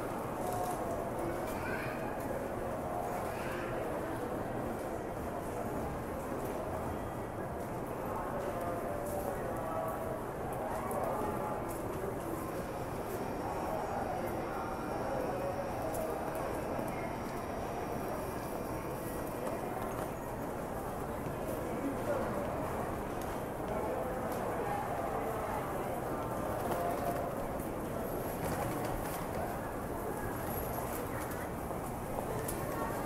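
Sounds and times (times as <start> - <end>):
crowd chatter in a busy train station: 0.0 - 33.0.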